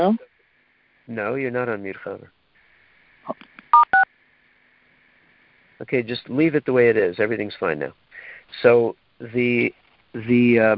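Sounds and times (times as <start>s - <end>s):
speech: 0.0s - 0.3s, 1.1s - 2.4s, 3.2s - 3.5s, 5.8s - 10.7s
telephone keypad beeps on a conference call line: 3.7s - 4.0s.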